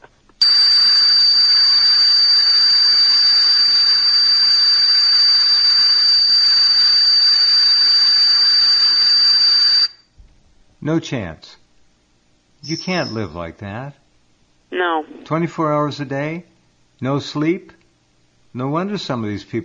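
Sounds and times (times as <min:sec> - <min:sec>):
tea kettle whistling: 0:00.4 - 0:10.0
speech: 0:10.9 - 0:11.6, 0:12.6 - 0:14.0, 0:14.7 - 0:17.8, 0:18.6 - 0:19.6.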